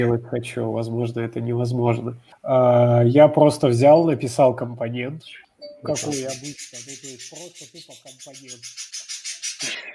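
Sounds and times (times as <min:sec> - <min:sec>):
speech: 0:00.0 - 0:09.9
pair of parent parrots squawking: 0:05.8 - 0:09.8.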